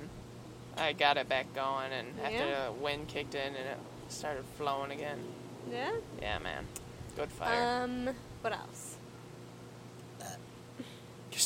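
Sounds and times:
speech: 0.8s - 8.9s
burp: 10.2s - 10.4s.

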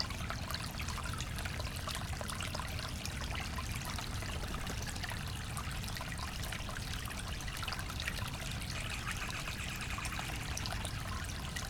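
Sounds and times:
water running over rocks in a small brook: 0.1s - 11.6s.

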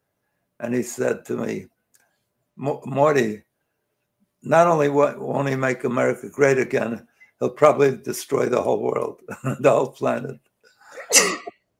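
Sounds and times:
speech: 0.6s - 1.8s, 2.6s - 3.5s, 4.4s - 10.5s, 11.1s - 11.6s
person sneezing: 10.9s - 11.5s.

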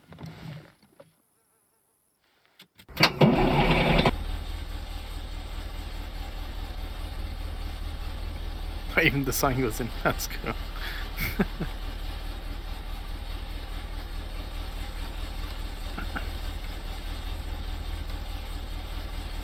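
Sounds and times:
large school bus engine cranking and idling: 2.9s - 19.4s
speech: 9.0s - 11.8s
laughter: 9.0s - 11.9s, 15.8s - 16.5s.

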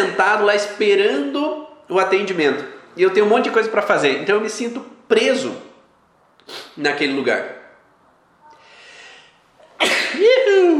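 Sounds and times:
speech: 0.2s - 5.7s, 6.5s - 7.6s
sneeze: 6.4s - 6.8s, 9.7s - 10.5s.

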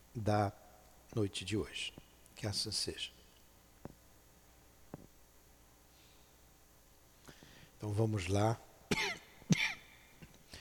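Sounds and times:
speech: 0.2s - 3.2s, 7.8s - 9.1s
person giving sharp raspy coughs: 8.9s - 10.0s.

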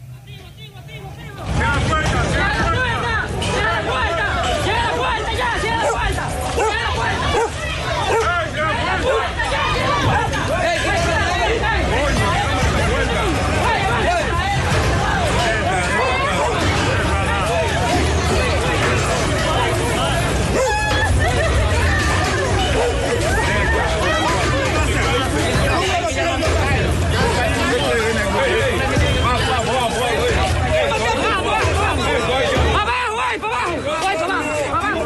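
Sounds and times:
crowd shouting and chattering at a border gate in Dajabón, Dominican Republic: 0.0s - 35.0s
laughter: 3.6s - 35.0s.

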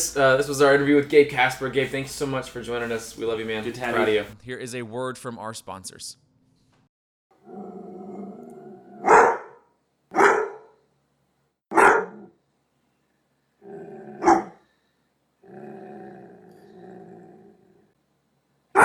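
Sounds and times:
speech: 0.1s - 6.2s
dog growling: 7.4s - 9.4s, 12.0s - 12.4s, 13.6s - 14.6s, 15.4s - 17.9s
dog barking: 9.0s - 10.8s, 11.7s - 12.3s, 14.2s - 14.6s.

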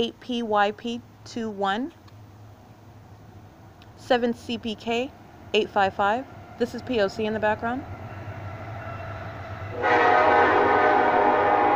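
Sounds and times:
speech: 0.0s - 2.0s, 4.0s - 8.0s
low rumbling rail noise: 2.2s - 11.7s
train horn blaring: 9.7s - 11.7s.

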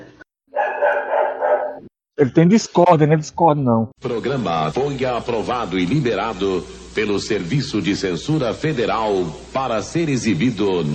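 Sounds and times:
neighbour's dog barking and yowling: 0.5s - 1.8s
speech: 2.2s - 10.9s.

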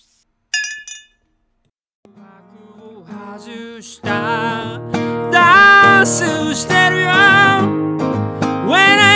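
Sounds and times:
glasses clinking in a toast: 0.5s - 1.3s
speech: 3.4s - 5.4s, 6.0s - 9.0s.

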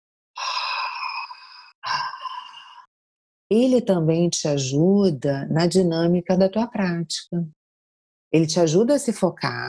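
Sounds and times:
ujjayi yogic breaths drawn through a constricted throat: 0.4s - 2.9s
speech: 3.5s - 7.6s, 8.3s - 9.6s.

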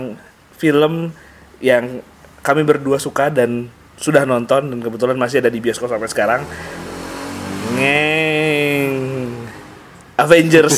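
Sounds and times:
speech: 0.0s - 6.9s, 7.6s - 8.3s, 10.2s - 10.7s
motorcycle engine droning: 6.2s - 10.0s.

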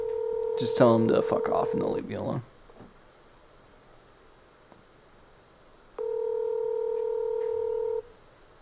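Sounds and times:
ringback tone of an outgoing phone call on speakerphone: 0.0s - 1.8s, 6.0s - 8.0s
speech: 0.6s - 2.5s.

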